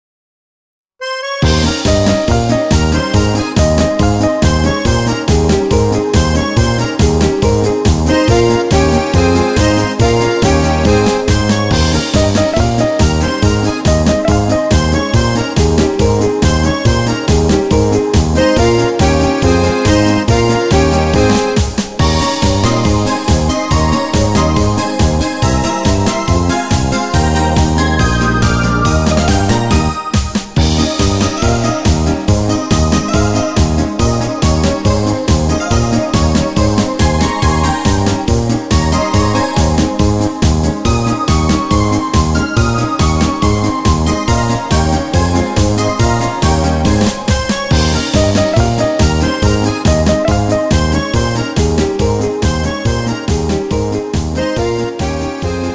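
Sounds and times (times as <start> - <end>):
alto backing track in A-flat major: 1.0 - 55.7.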